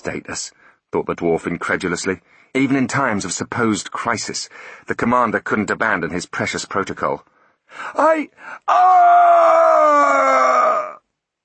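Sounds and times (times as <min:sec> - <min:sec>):
speech: 0:00.0 - 0:10.8
dwarf letting out short strained cries: 0:08.0 - 0:11.0
dwarf screaming with a gurgling rattling end: 0:08.0 - 0:11.0.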